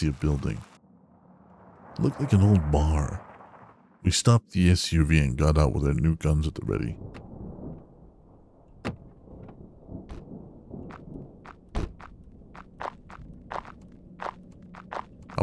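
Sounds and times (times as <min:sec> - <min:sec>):
speech: 0:00.0 - 0:00.7, 0:02.0 - 0:03.3, 0:04.0 - 0:07.2
low rumbling background: 0:00.0 - 0:11.3
slow footsteps approaching the entrance of an old bar: 0:10.8 - 0:15.4.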